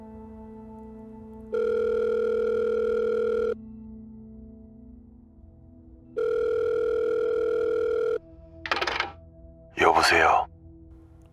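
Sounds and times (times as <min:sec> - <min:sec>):
telephone line tone in long steady electronic beeps: 0:01.5 - 0:03.6, 0:06.2 - 0:09.2.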